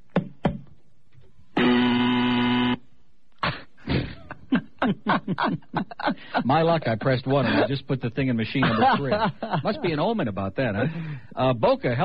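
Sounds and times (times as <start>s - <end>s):
loud harsh buzzer sound effect from a cart machine: 1.6s - 2.9s
laughter: 3.9s - 7.8s, 8.6s - 10.1s
speech: 5.3s - 12.0s.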